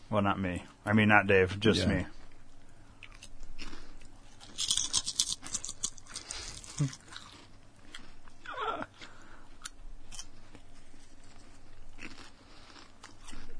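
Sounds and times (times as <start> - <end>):
speech: 0.1 - 2.2, 6.8 - 7.0
chewing and crunching food close to microphone: 3.0 - 13.5.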